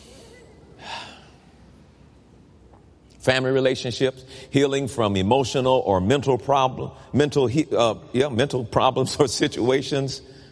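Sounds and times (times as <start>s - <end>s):
steady low hiss: 0.0s - 10.4s
deep gasping breath: 0.8s - 1.5s
speech: 3.2s - 10.4s.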